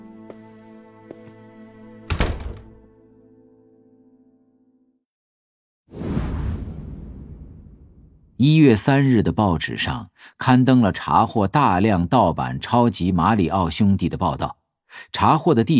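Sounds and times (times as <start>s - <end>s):
door opening and closing as someone leaves: 2.1s - 2.9s
speech: 8.4s - 15.7s.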